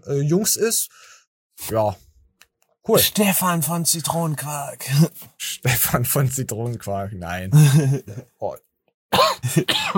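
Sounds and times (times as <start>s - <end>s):
speech: 0.0s - 2.1s, 2.8s - 9.9s
dry coughing: 9.1s - 9.9s.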